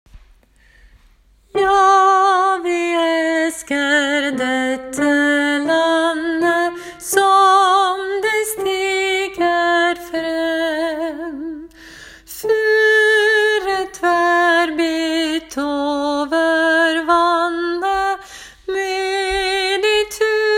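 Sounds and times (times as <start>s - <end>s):
soprano singing: 1.5s - 20.5s.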